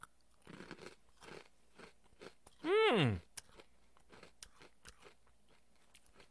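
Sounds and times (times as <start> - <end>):
chewing crunchy granola: 0.0 - 6.2
loud wavering hum of a voice: 2.6 - 3.2.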